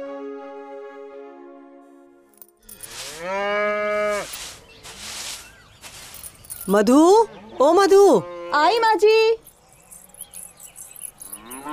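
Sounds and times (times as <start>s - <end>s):
cow mooing: 2.9s - 4.3s, 7.2s - 8.8s, 11.2s - 11.7s
faint pulsing high insect-like chirps: 4.2s - 7.1s, 9.0s - 11.7s
speech: 6.7s - 9.4s.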